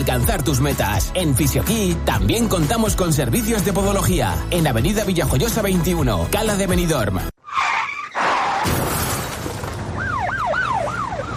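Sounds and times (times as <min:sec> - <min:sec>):
speech: 0:00.0 - 0:07.4
car tires screeching: 0:07.4 - 0:10.0
car crash with shattering glass in a traffic accident: 0:08.1 - 0:10.1
emergency siren wailing: 0:09.8 - 0:11.3.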